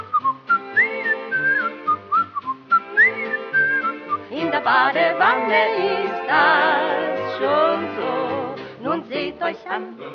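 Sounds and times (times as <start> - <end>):
person whistling a bouncy melody: 0.0 - 4.4
speech: 4.6 - 8.0, 9.3 - 10.1.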